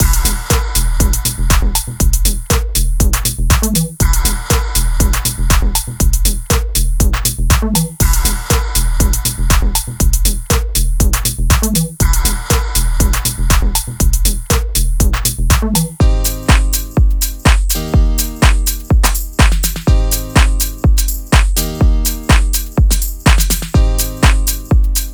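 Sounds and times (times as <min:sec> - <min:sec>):
deep house music: 0:00.0 - 0:25.1.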